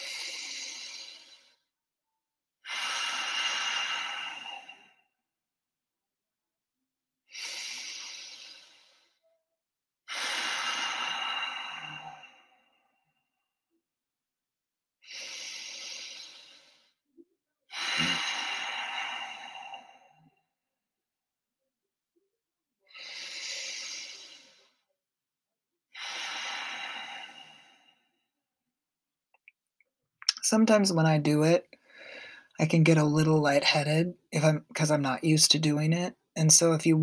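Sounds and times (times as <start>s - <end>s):
long slow breaths in and out through the nose: 0.0s - 1.7s, 2.7s - 5.1s, 7.3s - 9.3s, 10.1s - 13.1s, 15.0s - 17.0s, 17.7s - 20.3s, 22.9s - 24.8s, 26.0s - 28.2s, 31.8s - 32.5s
speech: 30.5s - 31.7s, 32.6s - 37.0s.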